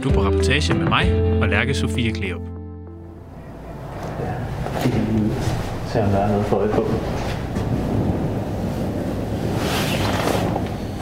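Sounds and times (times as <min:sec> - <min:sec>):
speech: 0:00.0 - 0:02.6, 0:04.7 - 0:07.4
strong wind across open water at a bird-watching tower in November cold: 0:03.3 - 0:11.0.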